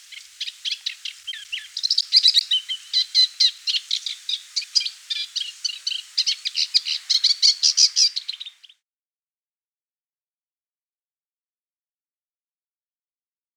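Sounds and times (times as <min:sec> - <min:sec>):
moustached warbler song: 0:00.0 - 0:08.8.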